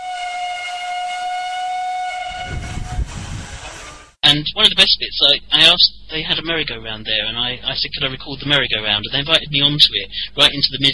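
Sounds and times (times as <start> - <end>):
steam train whistle: 0.0 - 4.2
steam train rumbling and chuffing: 2.2 - 4.3
speech: 4.3 - 10.9.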